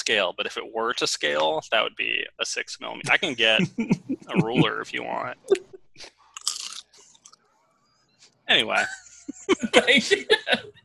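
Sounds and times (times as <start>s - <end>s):
laughter: 0.0s - 5.7s, 8.5s - 10.7s
speech: 0.0s - 6.2s, 8.5s - 10.8s
crunchy Cheez-It cheese crackers being chewed: 6.4s - 7.4s.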